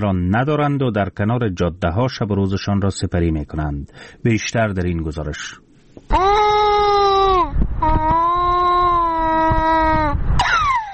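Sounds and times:
speech: 0.0 - 6.5
infant crying from hunger: 6.1 - 10.9.

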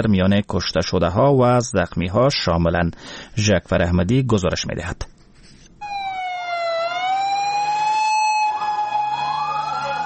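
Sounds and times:
speech: 0.0 - 5.1
ambulance sirens wailing rushing to a bombing scene in a crowded park: 5.8 - 10.0.

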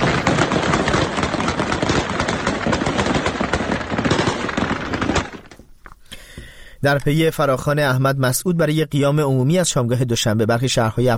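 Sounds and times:
dense sustained bursts of gunfire: 0.0 - 5.6
speech: 6.8 - 11.1.

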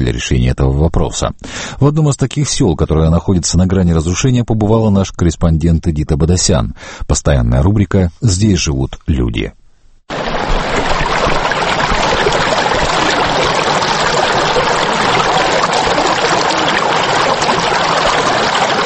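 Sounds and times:
speech: 0.1 - 10.4
mountain river water rushing: 10.1 - 18.8.

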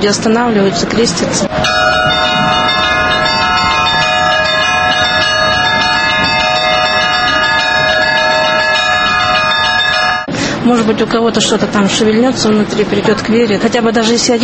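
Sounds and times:
speech: 0.0 - 2.2, 10.7 - 14.4
church bells ringing: 0.2 - 10.7.

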